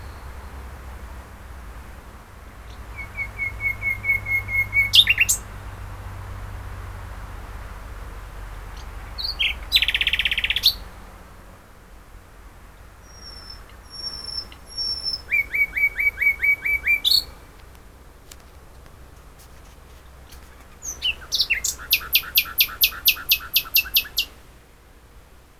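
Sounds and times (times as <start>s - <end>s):
common nightingale song, Luscinia megarhynchos: 0.0s - 0.6s, 2.6s - 5.8s, 8.7s - 10.9s, 12.6s - 17.6s, 19.9s - 24.4s.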